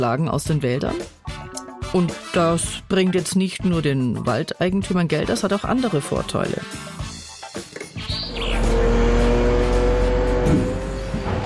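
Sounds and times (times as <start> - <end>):
speech: 0.0 - 1.2, 1.9 - 6.9
birds chirping: 8.0 - 9.4
heavy lorry engine idling and revving at a sawmill log yard: 8.1 - 11.4.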